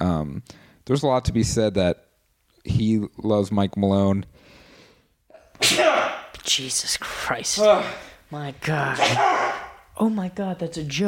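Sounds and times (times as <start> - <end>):
speech: 0.0 - 4.6, 5.6 - 11.0
loud exaggerated sneeze: 5.3 - 6.3, 8.9 - 9.8.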